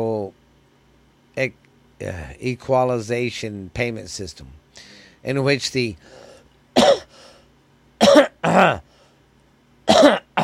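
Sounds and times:
speech: 0:01.4 - 0:06.2, 0:06.8 - 0:07.0
person clearing throat because of allergies: 0:06.8 - 0:07.1, 0:08.0 - 0:08.9, 0:09.9 - 0:10.4.

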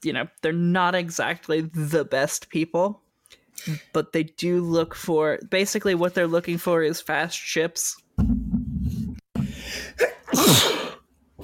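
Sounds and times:
speech: 0:00.0 - 0:03.0, 0:03.6 - 0:08.5
breath: 0:09.4 - 0:10.0
loud sneeze: 0:10.0 - 0:11.0.

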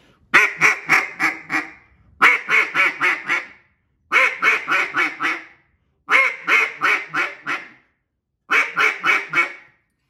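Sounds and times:
duck call blown in fast clipped clucks: 0:00.3 - 0:07.9, 0:08.5 - 0:09.8.

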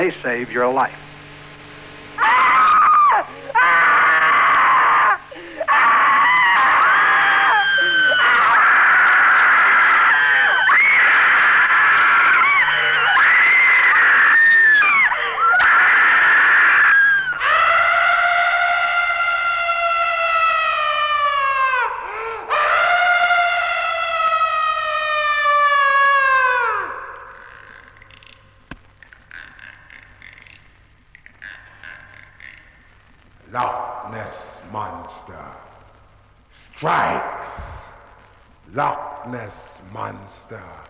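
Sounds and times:
speech: 0:00.0 - 0:01.1
crowd screaming in terror: 0:02.2 - 0:27.6.

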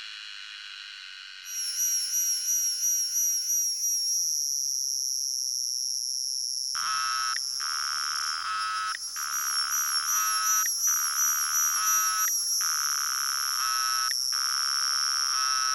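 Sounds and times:
shrill continuous cicada buzz with a high warbling tone: 0:06.8 - 0:15.7.

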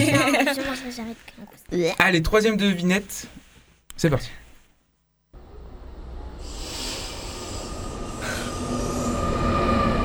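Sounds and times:
laughter: 0:00.0 - 0:00.7
speech: 0:00.9 - 0:03.4, 0:04.0 - 0:04.4
regional train pulling into a station: 0:06.6 - 0:10.0.

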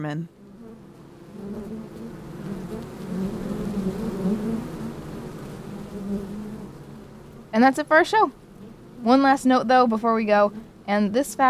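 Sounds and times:
speech: 0:00.0 - 0:00.4, 0:06.0 - 0:06.5, 0:07.5 - 0:08.4, 0:09.0 - 0:11.4
many honeybees buzzing at a hive: 0:00.0 - 0:11.4.

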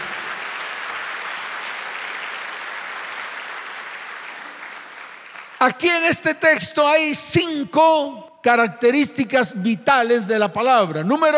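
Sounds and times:
congregation applauding: 0:00.0 - 0:06.0
speech: 0:05.6 - 0:11.3.

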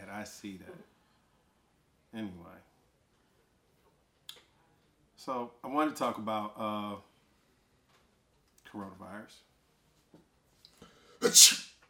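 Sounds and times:
speech: 0:00.2 - 0:01.0, 0:02.1 - 0:02.7, 0:05.2 - 0:07.1, 0:08.7 - 0:09.5, 0:11.2 - 0:11.7
sneeze: 0:11.2 - 0:11.8.

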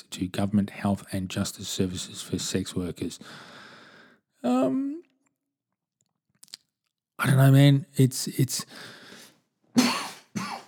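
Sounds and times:
speech: 0:00.0 - 0:03.6, 0:04.4 - 0:05.0, 0:07.2 - 0:09.0
person coughing: 0:09.8 - 0:10.6.

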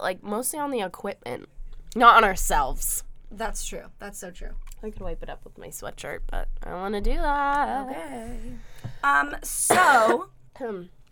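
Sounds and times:
speech: 0:00.0 - 0:11.0
sick person coughing: 0:09.7 - 0:10.3.

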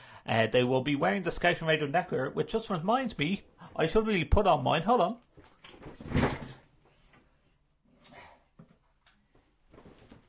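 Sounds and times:
speech: 0:00.2 - 0:05.2
chair creaking and springing back as someone rises: 0:05.6 - 0:06.7
chair rattling thump: 0:05.8 - 0:06.6.

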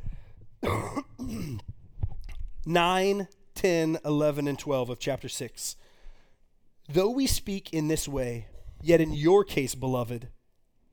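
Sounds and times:
person breathing: 0:00.0 - 0:00.5, 0:05.8 - 0:06.5
person coughing: 0:00.6 - 0:01.7
speech: 0:02.6 - 0:05.8, 0:06.9 - 0:10.4.

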